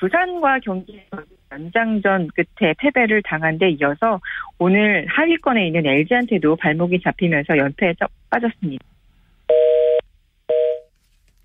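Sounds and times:
speech: 0.0s - 8.9s
telephone busy signal electronic beeps: 9.5s - 10.9s.

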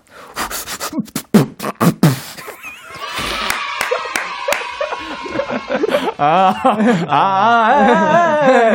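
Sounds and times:
person vocally mimicking squeezing a nearly empty ketchup bottle: 0.4s - 2.6s
audience laughing: 2.4s - 8.7s
audience chatter: 3.0s - 6.5s
speech: 6.2s - 8.7s.

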